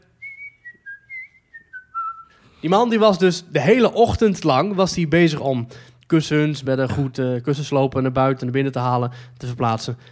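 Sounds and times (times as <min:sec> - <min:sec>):
man whistling a theme park melody: 0:00.0 - 0:02.4
speech: 0:02.6 - 0:10.1.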